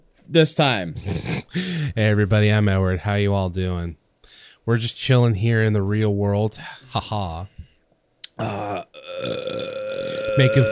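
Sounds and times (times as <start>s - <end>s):
speech: 0.3s - 4.0s, 4.7s - 7.6s, 8.4s - 9.8s, 10.4s - 10.6s
person burping after a fizzy drink: 8.2s - 10.6s.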